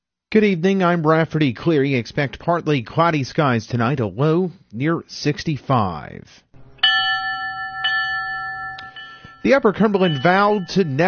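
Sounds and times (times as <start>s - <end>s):
speech: 0.3s - 6.4s, 9.4s - 11.0s
bell strikes at a memorial ceremony for firefighters: 6.6s - 11.0s.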